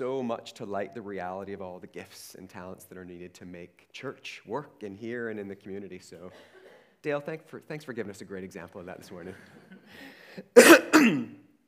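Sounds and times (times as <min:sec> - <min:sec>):
speech: 0:00.0 - 0:11.4
laughter: 0:08.8 - 0:10.2
quiet breath: 0:09.8 - 0:10.6
person clearing throat into a body microphone: 0:10.6 - 0:11.4.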